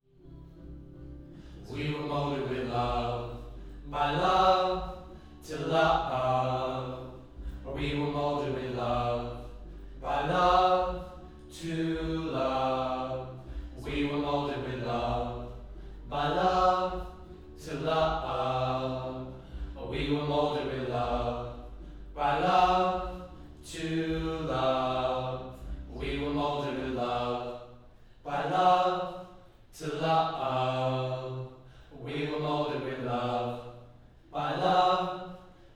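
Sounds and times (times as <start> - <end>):
low choir harmony: 0.0 - 35.7.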